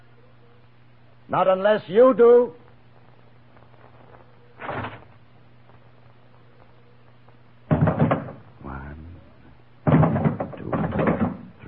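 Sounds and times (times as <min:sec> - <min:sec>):
low hum: 0:00.0 - 0:11.6
speech: 0:01.3 - 0:02.6
door opening with a scraping clunk: 0:04.6 - 0:05.1, 0:09.9 - 0:11.5.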